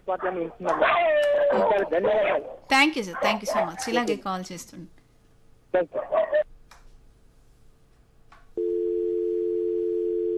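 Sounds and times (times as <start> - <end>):
speech: 0.1 - 5.0, 5.7 - 6.4
steady telephone tone after a disconnected call: 8.6 - 10.3.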